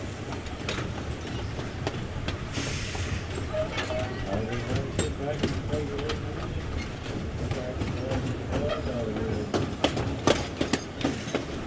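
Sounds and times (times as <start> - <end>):
steam train rolling along with a dense steady rumble: 0.0 - 11.6
sharp clicks and clanks from train wheels and cars: 0.2 - 11.6
brief hiss of steam: 2.4 - 3.5.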